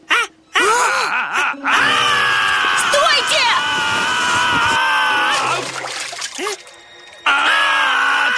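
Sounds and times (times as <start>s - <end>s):
people shrieking in high-pitched voices: 0.6s - 5.8s, 7.2s - 8.3s
bodies sliding into water: 5.1s - 6.8s.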